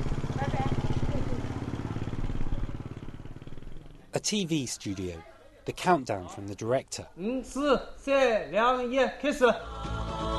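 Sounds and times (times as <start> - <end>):
motorbike engine rumbling while riding: 0.0 - 4.9
speech: 4.2 - 9.9.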